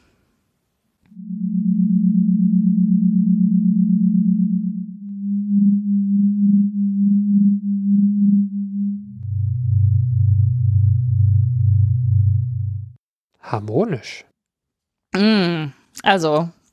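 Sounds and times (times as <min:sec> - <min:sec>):
sonified stellar oscillations as a deeper rougher throbbing drone: 0:01.1 - 0:13.0
sonified stellar oscillations as a low electronic hum: 0:01.1 - 0:13.0
sonified stellar oscillations as a wavering pulsing tone: 0:01.1 - 0:13.0
speech: 0:13.5 - 0:14.3, 0:15.1 - 0:16.6.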